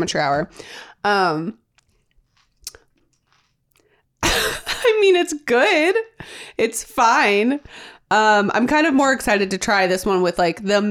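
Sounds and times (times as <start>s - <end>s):
speech: 0.0s - 1.6s, 4.4s - 10.9s
person biting into and chewing a crisp frozen snack: 1.6s - 4.2s.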